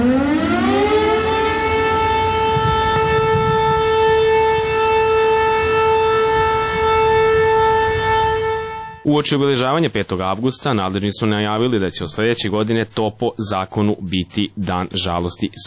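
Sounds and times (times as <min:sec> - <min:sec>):
civil defense warning siren winding up and wailing: 0:00.0 - 0:09.1
speech: 0:09.2 - 0:15.6.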